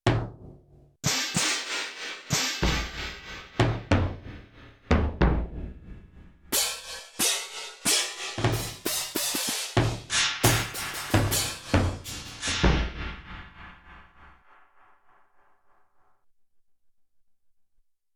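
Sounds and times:
bass drum from a sampler: 0.0 - 1.6, 2.3 - 14.4
cymbals with delay effect from a sampler: 1.0 - 4.0, 6.6 - 13.6.

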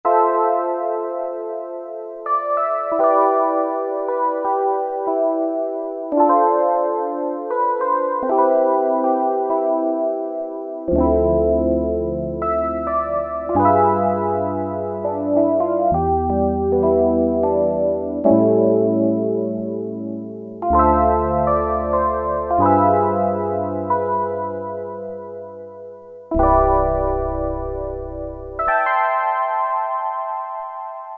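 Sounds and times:
synth electric piano on a Roland Juno-106: 0.0 - 31.1.

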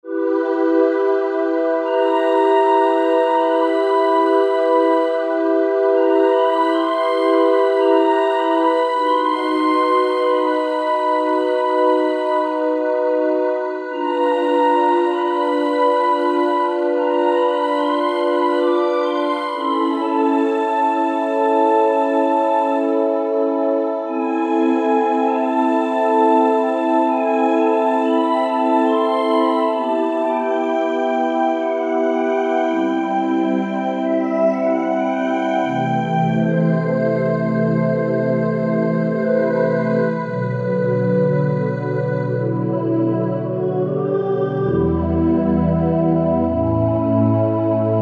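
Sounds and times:
synthesizer pad: 0.0 - 48.0.

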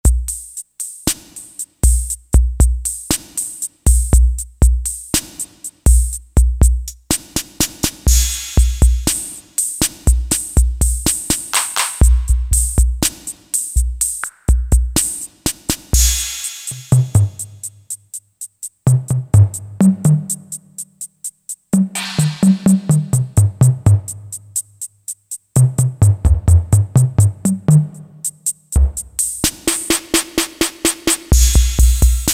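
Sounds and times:
CR-78 drum machine factory rhythm patterns: 0.0 - 32.3.

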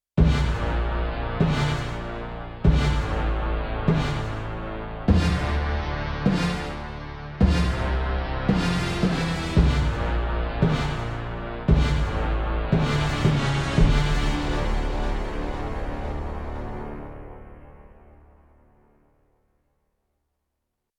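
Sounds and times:
Yamaha TX16W orchestra hit: 0.2 - 16.3.

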